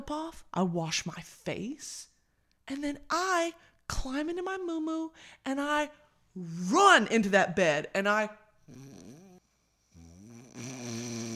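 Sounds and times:
speech: 0:00.1 - 0:02.1, 0:02.7 - 0:09.2
person imitating snoring: 0:08.7 - 0:11.3.

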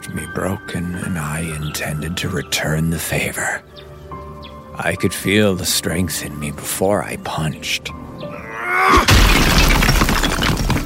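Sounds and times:
speech: 0:00.4 - 0:03.8, 0:04.8 - 0:08.3
brick-and-mortar chimney smashed and crumbling from the top down: 0:08.9 - 0:10.8
rumbling spill of breaking masonry and debris: 0:08.9 - 0:10.8.

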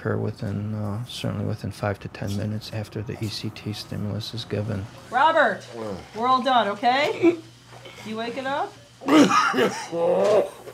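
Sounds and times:
speech: 0:00.0 - 0:10.7
groggy patient coughing while waking from anesthesia: 0:09.0 - 0:10.6.

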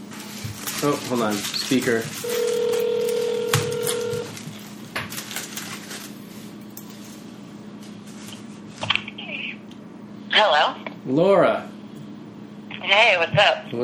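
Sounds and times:
speech: 0:00.8 - 0:02.8, 0:10.4 - 0:11.7, 0:12.9 - 0:13.8
steady electronic phone tone: 0:02.2 - 0:04.3.

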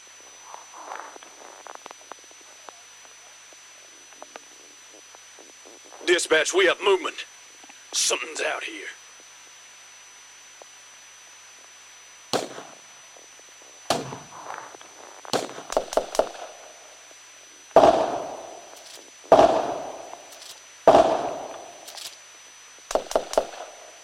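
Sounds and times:
speech: 0:06.1 - 0:07.3, 0:08.0 - 0:09.0
gunshots with tails: 0:12.4 - 0:12.8, 0:13.9 - 0:14.5, 0:15.3 - 0:16.7, 0:17.8 - 0:22.2, 0:22.9 - 0:23.8.

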